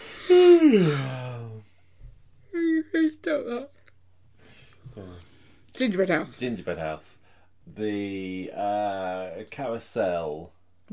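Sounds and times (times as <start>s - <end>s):
person yawning: 0.0s - 1.7s
speech: 0.7s - 1.2s, 3.4s - 3.8s, 5.0s - 10.9s.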